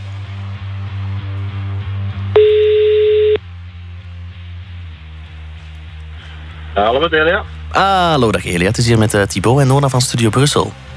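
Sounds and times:
low steady hum: 0:00.0 - 0:08.3
outgoing phone call ringing tone: 0:02.4 - 0:03.4
speech: 0:06.8 - 0:10.9.

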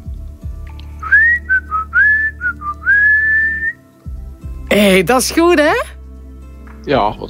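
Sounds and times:
person whistling a short lively tune: 0:01.0 - 0:03.8
speech: 0:04.8 - 0:05.9, 0:06.8 - 0:07.2.

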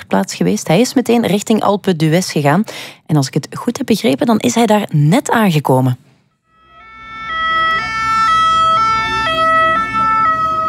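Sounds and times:
speech: 0:00.1 - 0:06.1
police and emergency sirens in a two-tone hi-lo pattern near race route: 0:06.4 - 0:10.6
low rumble of road traffic: 0:06.6 - 0:10.6.

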